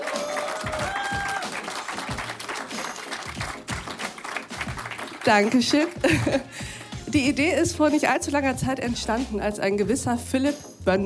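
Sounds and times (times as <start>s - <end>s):
whistles and whoops from the crowd: 0.0s - 1.6s
audience applauding: 0.0s - 7.0s
speech: 5.2s - 11.0s
laughter: 5.8s - 6.7s.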